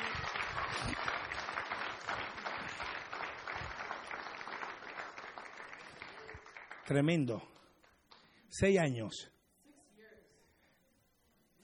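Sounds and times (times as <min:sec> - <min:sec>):
audience applauding: 0:00.0 - 0:08.3
speech: 0:06.9 - 0:07.5, 0:08.5 - 0:09.4.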